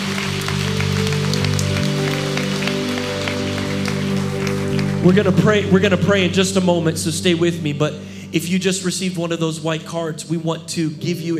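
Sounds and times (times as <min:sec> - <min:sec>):
church audience clapping: 0:00.0 - 0:06.2
sustained keyboard or organ chords: 0:00.0 - 0:11.3
speech: 0:05.0 - 0:11.3.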